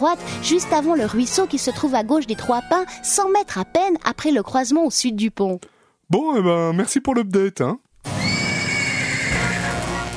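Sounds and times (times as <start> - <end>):
speech: 0.0 - 7.8
horse neighing as its rider mounts: 8.2 - 10.0.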